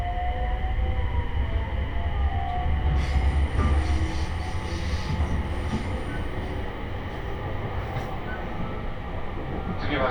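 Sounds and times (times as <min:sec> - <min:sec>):
train rumbling on the Tohoku Main Line heard from inside a car: 0:00.0 - 0:10.0.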